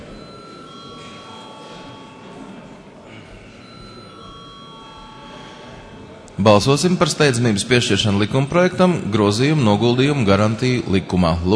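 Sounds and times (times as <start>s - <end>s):
electric bell ringing in the chamber of the Saeima, Latvia's parliament: 0.0s - 2.7s, 3.6s - 7.4s
faint murmur in the Saeima chamber: 0.0s - 11.5s
speech: 6.4s - 11.5s.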